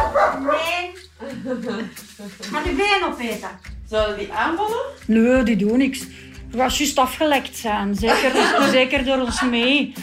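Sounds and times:
dogs barking: 0.0 - 0.9
laughter: 1.2 - 2.5, 8.1 - 9.7
speech: 1.4 - 10.0.

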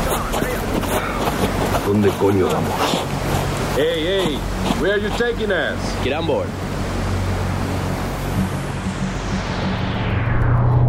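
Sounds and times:
rushing water and spray of choppy sea: 0.0 - 9.7
speech: 1.9 - 3.2, 3.8 - 6.6
motor launch carrying passengers engine hum: 3.0 - 10.8.

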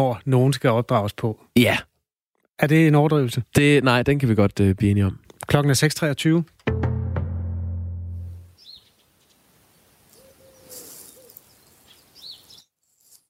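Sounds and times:
speech: 0.0 - 1.9, 2.6 - 6.8
smaller birds chirping high: 8.5 - 13.2
wood pigeon cooing on a rooftop: 10.1 - 11.6.

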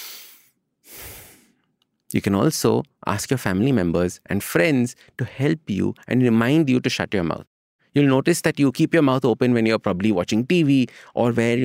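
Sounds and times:
breathing in and out through the nose: 0.0 - 1.6
speech: 2.1 - 11.6.

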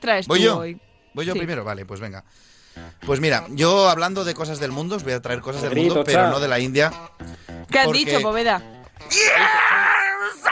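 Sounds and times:
speech: 0.0 - 10.5
drawn-out vocal scream or wail: 9.1 - 10.5.

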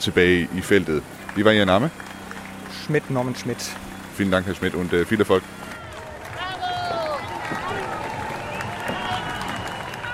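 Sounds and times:
speech: 0.0 - 2.1, 2.9 - 5.6
dense outdoor crowd at a marathon finish line by the Brandenburg Gate cheering and clapping: 0.3 - 10.1
scattered shouts: 5.5 - 10.1
whistles: 7.2 - 10.1.

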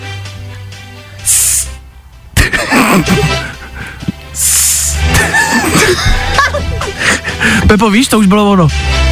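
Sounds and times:
snake hissing: 1.2 - 1.8, 4.3 - 5.2
speech: 2.6 - 3.5, 7.7 - 9.0
laughter: 2.8 - 3.6, 5.1 - 7.4.

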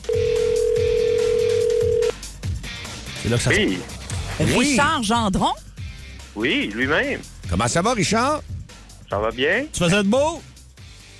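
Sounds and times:
phone line ringback tone on an outgoing call: 0.0 - 2.1
speech: 3.3 - 5.6, 6.4 - 8.5, 9.1 - 10.5.

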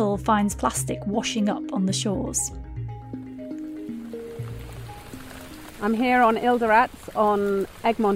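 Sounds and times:
speech: 0.0 - 2.7, 5.8 - 8.1
heavy rain pouring down on Egmont Atoll in the Indian Ocean: 3.5 - 8.1.

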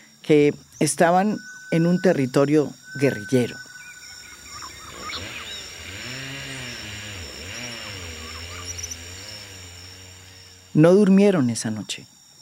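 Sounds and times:
faint high whine: 0.0 - 12.4
speech: 0.3 - 3.6, 10.8 - 12.1
chainsaw engine roaring and revving: 3.5 - 11.1.

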